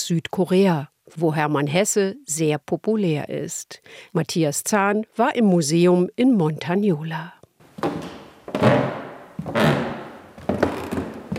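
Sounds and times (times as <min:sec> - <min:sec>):
speech: 0:00.1 - 0:08.7
slow heavy footsteps on old wooden floor: 0:07.6 - 0:11.3.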